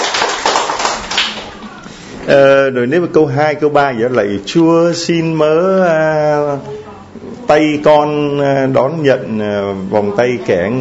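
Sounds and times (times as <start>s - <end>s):
audience applause at a religious gathering: 0.0s - 1.8s
speech: 2.3s - 6.8s, 7.5s - 10.7s.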